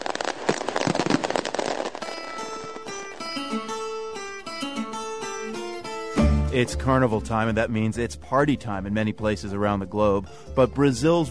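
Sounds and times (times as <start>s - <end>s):
barrage of firecrackers crackling and popping: 0.0s - 3.8s
bright instrumental melody: 2.4s - 11.2s
speech: 6.6s - 11.2s.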